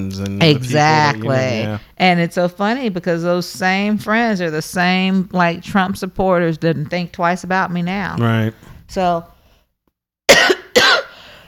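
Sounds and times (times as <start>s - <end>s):
speech: 0.0s - 9.3s
person coughing: 10.3s - 11.3s.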